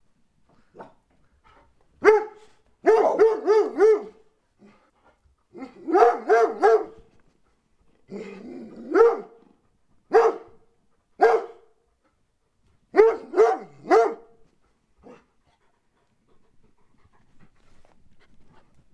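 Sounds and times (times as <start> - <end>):
large dogs barking: 2.0 - 4.2, 5.6 - 7.0, 8.7 - 9.4, 10.1 - 10.6, 11.2 - 11.6, 12.9 - 14.4.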